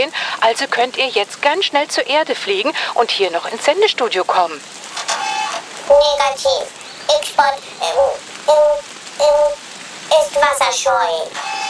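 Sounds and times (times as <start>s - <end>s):
speech: 0.0s - 4.8s, 5.9s - 11.5s
heavy rain pouring down: 0.0s - 11.6s
sing-song vocal bursts: 5.8s - 11.6s.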